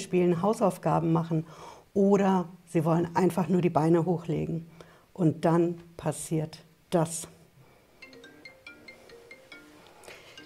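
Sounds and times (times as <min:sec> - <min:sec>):
speech: 0:00.0 - 0:07.4
soft hiss: 0:00.0 - 0:10.4
phone message notification tone of bright electronic chimes: 0:08.0 - 0:10.4.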